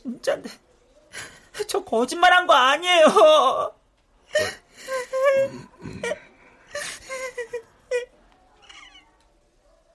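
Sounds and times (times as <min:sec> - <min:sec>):
speech: 0:00.2 - 0:06.2
person sobbing and crying with whimpering wails: 0:04.3 - 0:08.1.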